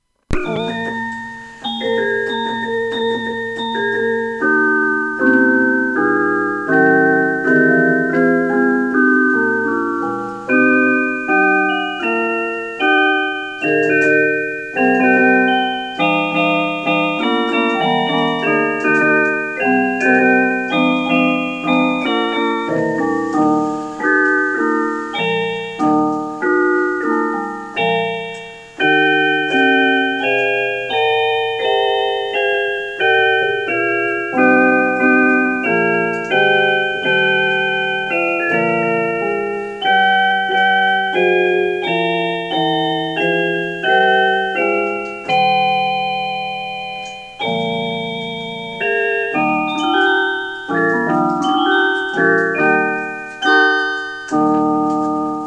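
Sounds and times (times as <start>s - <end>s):
classical melody played on keyboard: 0.0s - 55.4s.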